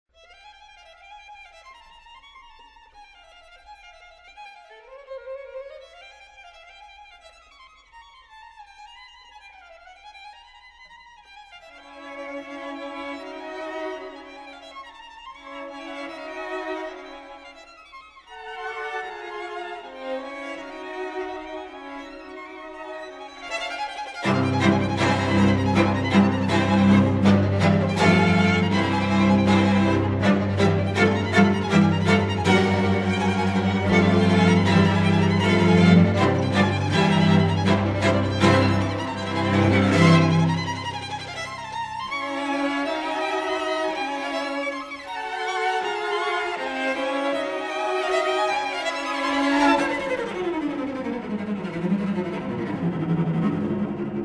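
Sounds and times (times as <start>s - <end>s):
string quartet playing in F minor: 11.8s - 54.2s.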